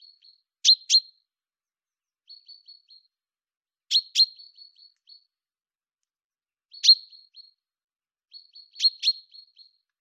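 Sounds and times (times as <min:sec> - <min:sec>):
common chaffinch Fringilla coelebs calls: 0:00.0 - 0:01.2, 0:03.9 - 0:05.3, 0:06.7 - 0:07.6, 0:08.3 - 0:09.8.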